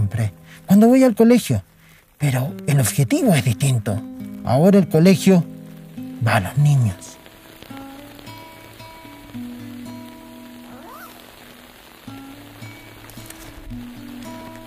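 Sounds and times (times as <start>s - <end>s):
steady rain falling outdoors: 0.0s - 14.6s
speech: 0.1s - 5.5s, 6.2s - 7.1s
umbrella opening: 10.6s - 11.6s, 13.0s - 14.6s.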